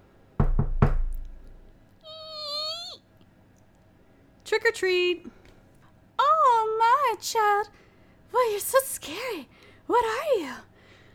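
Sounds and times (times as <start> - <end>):
firm knocks on the door of a house: 0.4 - 1.3
speech: 4.5 - 5.4, 7.2 - 10.7.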